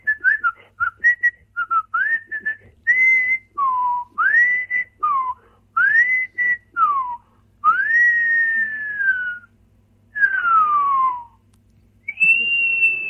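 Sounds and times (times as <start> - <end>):
human whistling in swooping notes: 0.0 - 9.5, 10.2 - 11.4, 12.0 - 13.0.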